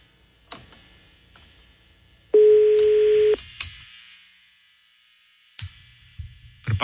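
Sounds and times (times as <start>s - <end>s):
unanswered telephone call ring tone going to voicemail: 2.4s - 3.4s.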